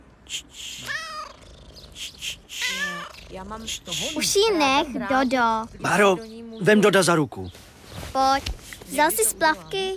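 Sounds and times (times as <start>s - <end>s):
speech: 0.3s - 1.1s, 2.0s - 7.6s, 8.2s - 9.9s
cat meowing: 0.8s - 1.4s, 2.5s - 3.4s
faint hissy rustling: 7.3s - 9.9s.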